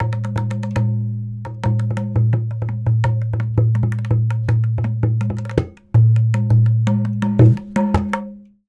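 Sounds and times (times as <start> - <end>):
tabla drum beat: 0.0 - 8.4.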